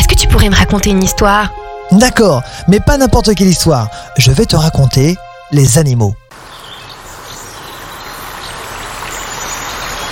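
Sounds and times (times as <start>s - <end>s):
speech: 0.4s - 6.2s
stream water flowing: 6.3s - 10.1s.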